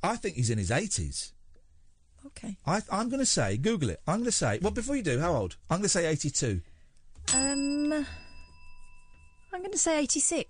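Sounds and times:
speech: 0.0s - 1.4s, 2.2s - 6.7s, 7.3s - 8.2s, 9.5s - 10.4s
bell ringing: 7.2s - 10.4s.

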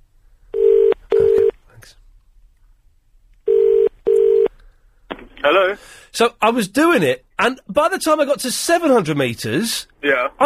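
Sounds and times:
telephone ring tone heard down a phone line: 0.6s - 1.5s, 3.5s - 4.5s
speech: 5.5s - 10.4s.

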